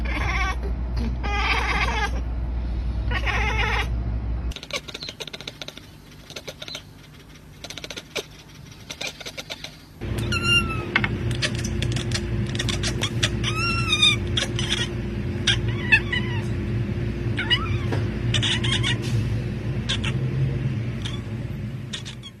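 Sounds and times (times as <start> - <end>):
domestic cat mewing and chirping: 0.0 - 0.6, 1.2 - 2.3, 3.1 - 3.9, 8.9 - 16.5, 17.4 - 19.0, 19.9 - 20.2, 21.0 - 21.3, 21.9 - 22.3
steady low hum: 0.0 - 22.3.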